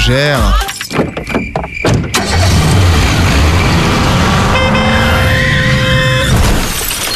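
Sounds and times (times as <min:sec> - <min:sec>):
sharp knocks: 0:00.9 - 0:02.2
car crashing head-on into an oncoming car: 0:01.2 - 0:07.1
car engine roaring: 0:02.1 - 0:07.0
long car horn blaring: 0:04.2 - 0:06.6.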